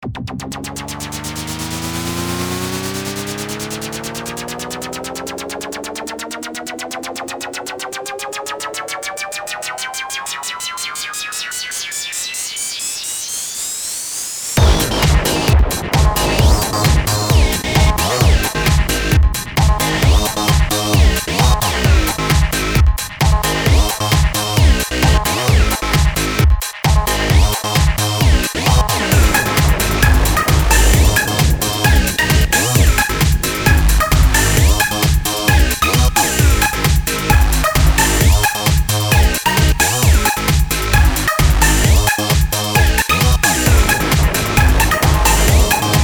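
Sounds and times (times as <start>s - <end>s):
electronic synth music: 0.0s - 14.0s, 14.6s - 46.0s.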